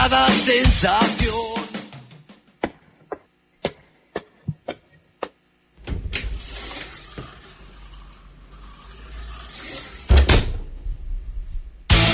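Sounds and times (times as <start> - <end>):
speech: 0.1 - 1.5
door creaking: 5.8 - 11.9
heavy low thud: 10.1 - 12.0.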